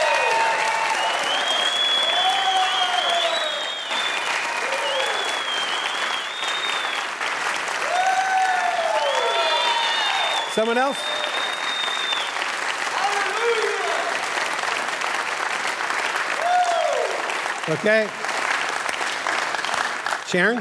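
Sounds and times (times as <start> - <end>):
church audience whoops and shouts: 0.0 - 5.8, 7.8 - 12.3, 16.4 - 17.3
church audience applauding: 0.0 - 20.6
speech: 10.6 - 11.2, 17.7 - 18.3, 20.3 - 20.6.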